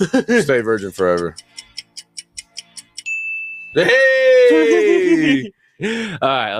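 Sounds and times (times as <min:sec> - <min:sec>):
laughter: 0:00.0 - 0:00.7, 0:03.8 - 0:06.3
speech: 0:00.0 - 0:01.6, 0:03.7 - 0:06.5
quick evenly spaced ticks: 0:00.5 - 0:03.1
phone app ding: 0:00.8 - 0:04.3.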